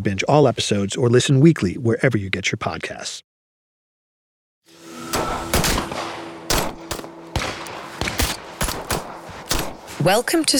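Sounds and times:
speech: 0.0 - 3.3, 10.0 - 10.5
gunfire at a highly secure military shooting range in light snowfall: 5.1 - 10.5.

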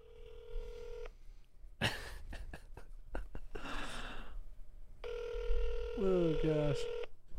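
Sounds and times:
telephone ringing tone: 0.0 - 1.1, 5.0 - 7.1
breathy sigh: 3.6 - 4.4
speech: 6.0 - 7.0.

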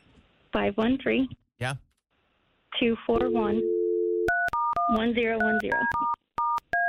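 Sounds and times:
speech: 0.6 - 1.9, 2.8 - 3.7, 4.9 - 6.2
touch-tone beeps dialing a time-and-temperature phone line: 3.3 - 6.8.

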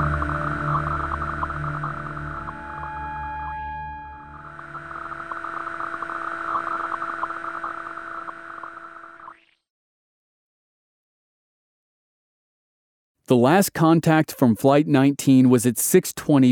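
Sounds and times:
eerie buzz of radio static with hissing noise: 0.0 - 9.4
droning electronic tones: 0.0 - 9.6
speech: 13.3 - 16.5.

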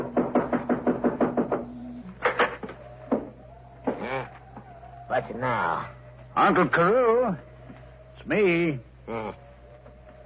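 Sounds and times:
knocking on the wooden front door of an old house: 0.0 - 1.8
thumps on a wooden door: 0.0 - 4.1
speech: 5.2 - 7.5, 8.2 - 9.4.

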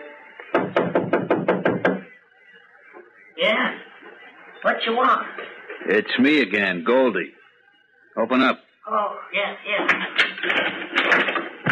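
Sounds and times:
knocking on the door of a shanty by the freight yards: 0.5 - 2.1
speech: 4.7 - 7.4, 8.2 - 11.5.

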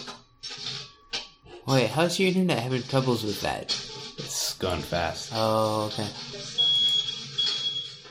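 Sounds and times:
speech: 1.7 - 3.8, 4.6 - 6.6
smoke alarm blaring a shrill high-pitched tone: 6.6 - 8.0.

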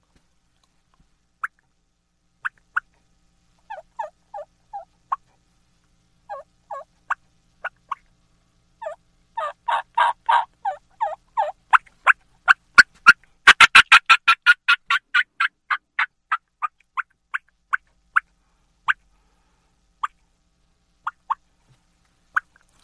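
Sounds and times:
hand-operated turkey call imitating a hen's fly-down cackle: 6.3 - 8.0, 8.8 - 18.3.

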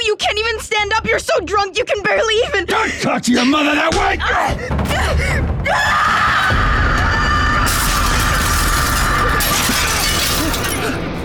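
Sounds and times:
speech: 0.1 - 6.7
people screaming: 5.7 - 10.6
glass shattering as a small bomb explodes at a window: 7.7 - 11.1.

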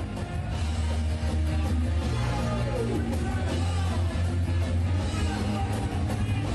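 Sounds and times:
live rock band playing at a concert: 0.0 - 6.5
noisy concert crowd: 0.0 - 6.5.

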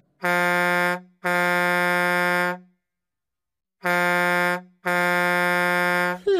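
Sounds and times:
air horn on a big truck blasting: 0.2 - 2.7, 3.8 - 6.3.

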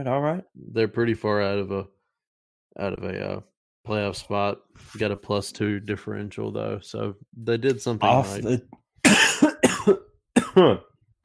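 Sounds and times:
speech: 0.0 - 2.0, 2.8 - 10.0, 10.6 - 10.9
harsh throaty coughing after a breath went down the wrong way: 9.0 - 10.9.

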